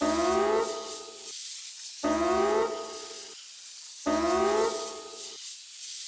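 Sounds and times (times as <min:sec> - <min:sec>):
emergency mode signal: 0:00.0 - 0:01.3, 0:02.0 - 0:03.3, 0:04.1 - 0:05.3.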